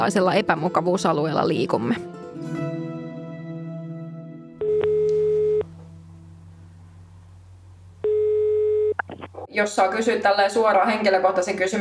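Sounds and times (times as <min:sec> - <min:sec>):
speech: 0:00.0 - 0:02.6, 0:09.6 - 0:11.7
telephone ringback tone beeping during a call: 0:04.6 - 0:05.7, 0:08.0 - 0:09.0
low hum: 0:04.6 - 0:09.5.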